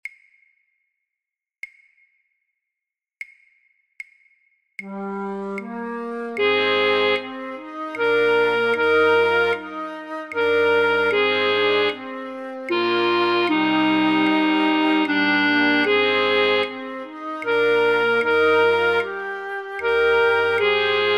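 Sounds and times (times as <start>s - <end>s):
flute: 4.8s - 21.1s.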